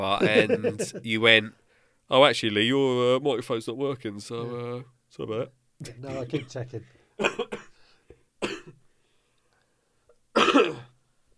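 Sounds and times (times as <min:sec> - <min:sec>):
laughter: 0:00.0 - 0:01.5, 0:05.8 - 0:06.8
speech: 0:00.0 - 0:07.6
person coughing: 0:00.2 - 0:01.0, 0:05.9 - 0:06.6, 0:07.2 - 0:07.7, 0:08.4 - 0:08.7, 0:10.4 - 0:10.9.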